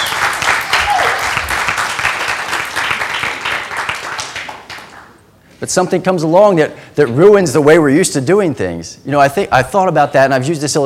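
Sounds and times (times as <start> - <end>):
audience applause with many hands clapping: 0.0 - 5.1
speech: 5.6 - 10.8.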